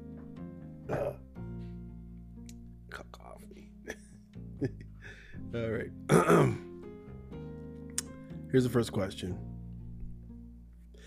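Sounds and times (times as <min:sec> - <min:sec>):
short rough cough: 0:00.9 - 0:01.2, 0:06.1 - 0:06.6
speech: 0:03.1 - 0:04.0, 0:04.6 - 0:04.8, 0:05.5 - 0:06.6, 0:08.5 - 0:09.6.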